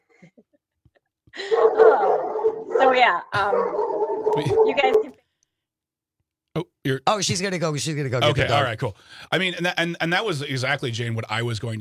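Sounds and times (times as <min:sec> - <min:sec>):
dog barking and yowling: 0:01.4 - 0:05.2
speech: 0:02.8 - 0:05.2, 0:06.8 - 0:11.8.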